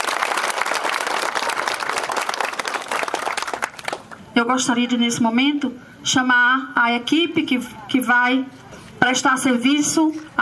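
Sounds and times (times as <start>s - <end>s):
crowd applause at the opening of a new community health clinic: 0.0s - 4.2s
speech: 4.4s - 10.4s.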